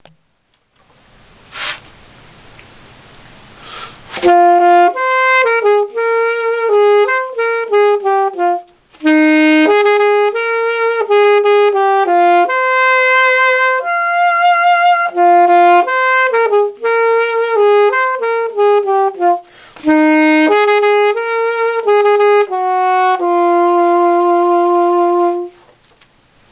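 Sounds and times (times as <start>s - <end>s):
saxophone line: 4.0s - 25.7s.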